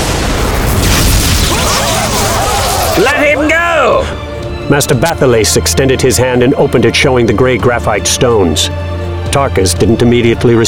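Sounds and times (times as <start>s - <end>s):
loud warning blast explosion: 0.0s - 3.2s
speech: 3.0s - 10.6s.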